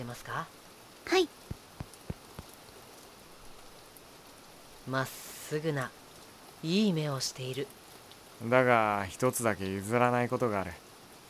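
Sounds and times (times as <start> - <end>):
light rain falling with a soft steady hiss: 0.0 - 11.2
speech: 0.1 - 1.6, 4.8 - 6.0, 6.6 - 7.8, 8.4 - 11.2
heavier raindrops tapping: 1.3 - 4.1.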